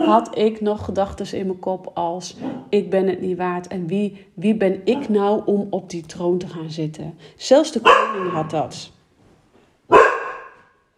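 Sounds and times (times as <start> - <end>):
speech: 0.0 - 9.0
dog sharp bark: 7.8 - 8.5, 9.9 - 10.7.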